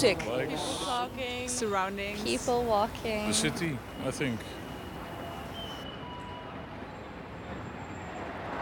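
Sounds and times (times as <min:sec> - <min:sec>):
speech: 0:00.0 - 0:04.6
dense roar of city traffic: 0:00.0 - 0:08.6
faint high-pitched squeals from tram rails: 0:03.6 - 0:08.3.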